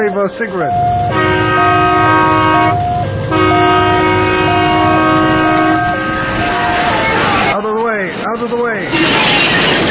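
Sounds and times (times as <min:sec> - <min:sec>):
speech: 0:00.0 - 0:01.8, 0:08.4 - 0:09.8
train fire alarm electronic two-note tones: 0:00.0 - 0:06.8
moving train carriages rumbling: 0:00.0 - 0:09.8.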